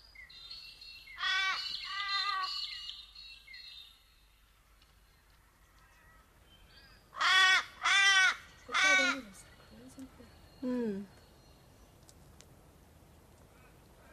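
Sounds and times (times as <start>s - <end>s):
crows cawing: 1.2s - 2.6s, 7.1s - 9.4s.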